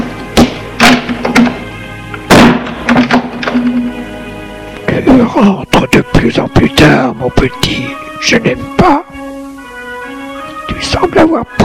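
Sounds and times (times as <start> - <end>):
door knocks and clicks: 0.4 - 1.6, 2.4 - 3.8
door latch rattling: 0.4 - 3.9
speech: 5.2 - 9.0, 10.8 - 11.6.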